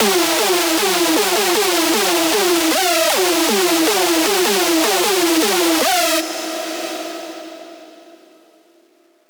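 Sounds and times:
screech music loop in E minor at 155: 0.0s - 6.2s.

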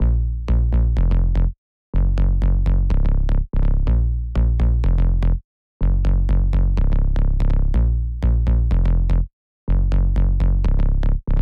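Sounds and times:
house sub bass drop loop in A# minor: 0.0s - 11.4s.

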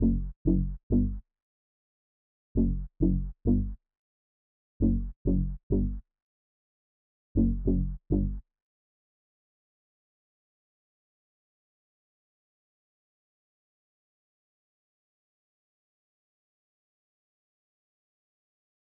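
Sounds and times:
D major bass loop at 100 BPM: 0.0s - 1.2s, 2.6s - 3.8s, 4.8s - 6.0s, 7.4s - 8.4s.

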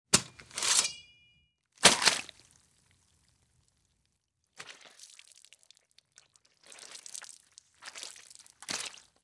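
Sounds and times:
machete grabbed and chopping by hand: 0.1s - 1.2s, 1.8s - 2.3s.

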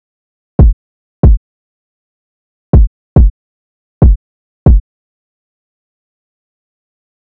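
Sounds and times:
drum loop with kick: 0.6s - 1.4s, 2.8s - 3.3s, 4.0s - 4.8s.

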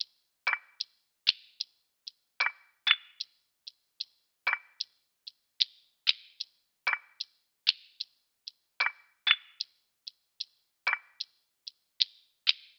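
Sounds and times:
percussion drum loop at 75 BPM: 0.0s - 1.7s, 2.4s - 3.3s, 4.0s - 9.7s, 10.4s - 11.4s.

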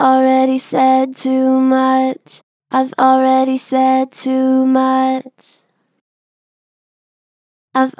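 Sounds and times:
vocals: 0.0s - 5.7s, 7.8s - 7.9s.

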